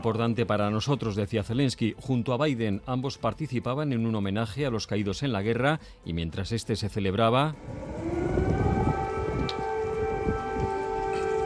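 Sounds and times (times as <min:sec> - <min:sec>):
speech: 0:00.0 - 0:08.0
low rumbling urban background: 0:07.5 - 0:11.4
air raid siren wailing across city streets: 0:07.6 - 0:11.4.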